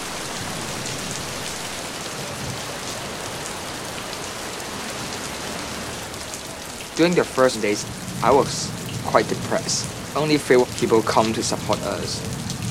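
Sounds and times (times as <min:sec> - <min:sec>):
heavy rain pattering on surfaces outdoors: 0:00.0 - 0:12.6
speech: 0:07.0 - 0:12.5.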